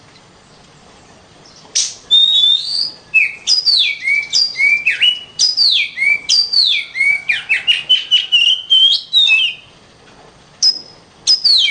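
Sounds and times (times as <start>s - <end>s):
Oriental magpie-robin singing: 1.4s - 9.7s, 10.6s - 11.6s.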